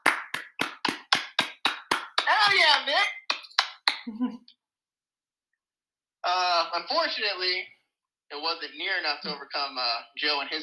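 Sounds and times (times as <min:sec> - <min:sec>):
sharp hand claps of one person applauding: 0:00.0 - 0:04.2
speech: 0:04.0 - 0:04.6, 0:06.2 - 0:10.6.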